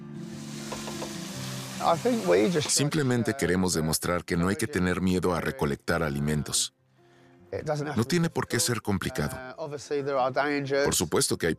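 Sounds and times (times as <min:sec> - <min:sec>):
coated chopped giant parsley heads frying in a pan: 0:00.3 - 0:02.9
speech: 0:01.8 - 0:06.8, 0:07.5 - 0:11.5.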